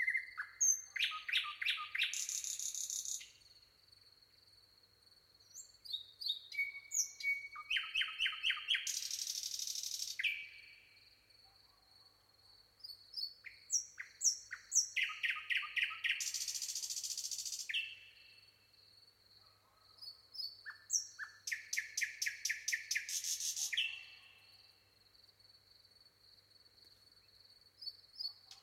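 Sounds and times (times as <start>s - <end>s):
common nightingale Luscinia megarhynchos singing: 0.0s - 3.6s, 5.4s - 11.0s, 12.8s - 18.6s, 20.0s - 24.8s, 27.8s - 28.6s.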